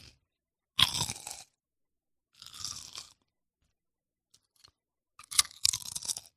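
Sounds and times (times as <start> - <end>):
crunching and chewing potato chips in an ASMR-style recording: 0.8 - 1.6, 2.3 - 3.3, 4.4 - 6.3.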